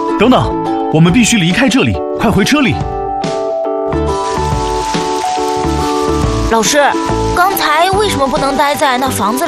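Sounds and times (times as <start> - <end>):
speech: 0.2 - 2.9, 6.5 - 9.4
rhythmic tonal musical backing: 2.9 - 9.4
rain pattering and hissing on a surface: 4.1 - 9.4.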